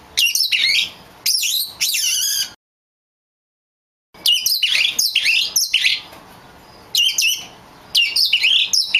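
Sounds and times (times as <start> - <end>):
Oriental magpie-robin of the lutung cebu type singing whistled notes: 0.2 - 2.6, 4.2 - 6.1, 6.9 - 8.9.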